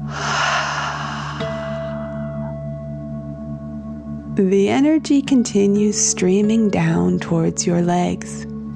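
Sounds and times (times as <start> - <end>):
deep breath in through nose and out through mouth: 0.1 - 2.6
steady low humming drone: 0.1 - 4.3
speech: 4.3 - 8.5.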